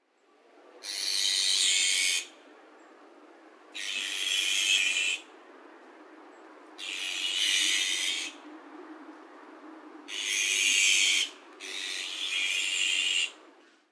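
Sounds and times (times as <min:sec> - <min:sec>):
azure-winged magpie calling: 0:00.8 - 0:02.3, 0:03.8 - 0:05.3, 0:06.8 - 0:08.4, 0:10.1 - 0:13.4.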